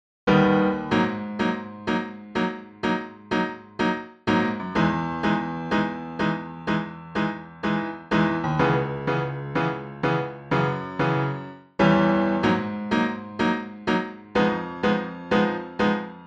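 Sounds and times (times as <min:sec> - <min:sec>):
piano: 0:00.3 - 0:16.2.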